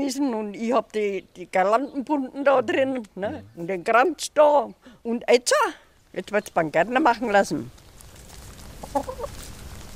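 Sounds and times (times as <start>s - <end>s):
speech: 0.0s - 7.8s, 8.9s - 9.4s
chickens clucking in an animal yard behind a village cemetery wall: 8.0s - 9.6s.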